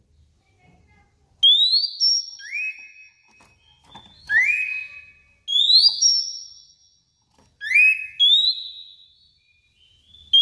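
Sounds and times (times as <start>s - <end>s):
Oriental magpie-robin whistling: 1.4s - 6.8s, 7.6s - 10.4s.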